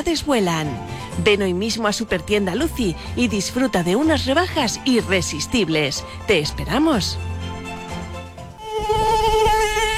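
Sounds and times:
speech: 0:00.0 - 0:07.3
flies and mosquitoes buzzing: 0:07.6 - 0:09.9.

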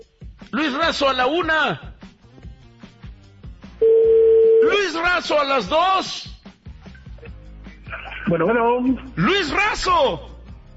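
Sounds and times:
speech: 0:00.5 - 0:01.9, 0:04.8 - 0:06.3, 0:08.3 - 0:10.3
telephone ringing tone on a call: 0:03.8 - 0:04.7.

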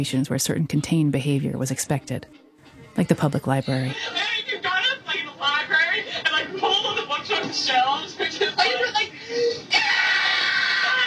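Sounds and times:
speech: 0:00.0 - 0:02.4, 0:03.0 - 0:04.3
hiss of an old tape recording: 0:00.0 - 0:11.0
laughter: 0:03.7 - 0:11.0
girl screaming on an old tape recording: 0:09.7 - 0:11.0.

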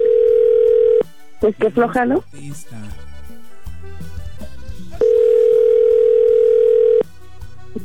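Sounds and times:
telephone ringback tone on an unanswered call: 0:00.0 - 0:01.1, 0:05.0 - 0:07.1
speech: 0:01.4 - 0:03.0.

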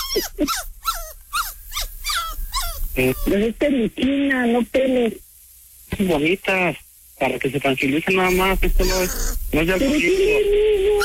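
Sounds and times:
small dog growling at a doctor's visit: 0:00.0 - 0:03.4, 0:08.3 - 0:11.0
speech: 0:00.1 - 0:00.7, 0:03.0 - 0:05.3, 0:06.0 - 0:11.0.

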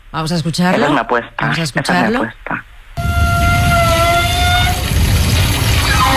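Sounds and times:
speech: 0:00.1 - 0:02.6
high squealing pipe tone: 0:03.0 - 0:04.9
water rushing from an outdoor shower on a beach promenade: 0:03.0 - 0:06.1.

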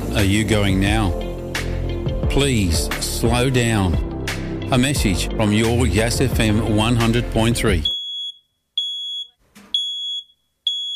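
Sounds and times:
speech: 0:00.2 - 0:01.3, 0:02.3 - 0:04.1, 0:04.7 - 0:08.0
smoke alarm beeping: 0:07.8 - 0:10.9.

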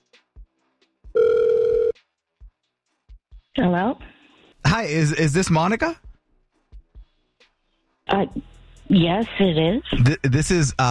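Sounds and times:
ringback tone from an outgoing phone call: 0:01.2 - 0:02.0
speech: 0:03.6 - 0:04.0, 0:04.7 - 0:06.1, 0:08.2 - 0:10.8.

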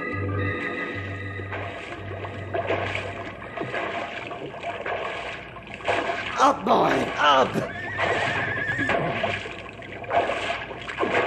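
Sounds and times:
icy river water churning and splashing from a horse: 0:00.0 - 0:11.2
speech: 0:06.4 - 0:07.7.

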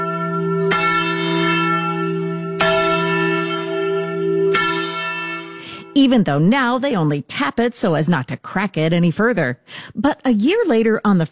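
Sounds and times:
large bell tolling: 0:00.0 - 0:07.2
speech: 0:06.0 - 0:11.3.

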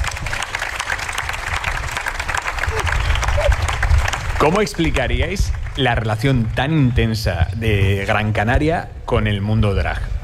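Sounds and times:
live audience applause welcoming drag artists: 0:00.0 - 0:06.1
speech: 0:04.4 - 0:10.1.

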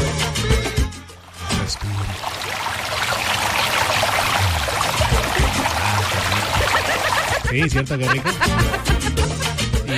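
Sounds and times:
river water rushing with gurgles and burbling: 0:01.2 - 0:07.5
laughter: 0:05.1 - 0:09.9
speech: 0:07.5 - 0:09.0.

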